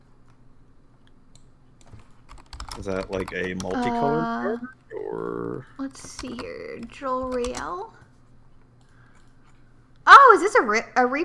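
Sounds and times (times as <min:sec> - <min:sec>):
faint computer keyboard clicks: 0:01.3 - 0:03.9, 0:06.0 - 0:07.8
speech: 0:02.8 - 0:08.0, 0:10.3 - 0:11.2.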